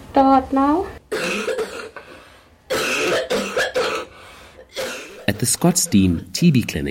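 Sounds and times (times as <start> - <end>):
speech: 0.2 - 1.5, 5.3 - 6.8
person coughing into a recording app: 1.1 - 6.2.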